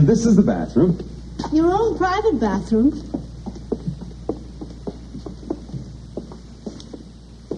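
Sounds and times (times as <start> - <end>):
speech: 0.0 - 3.2
air conditioning unit humming at a low pitch: 0.0 - 7.5.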